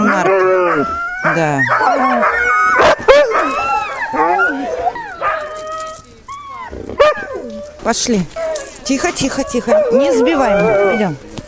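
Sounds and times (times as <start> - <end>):
sled dogs yipping and whining while being harnessed: 0.0 - 11.4
speech: 1.4 - 2.2, 7.9 - 11.3.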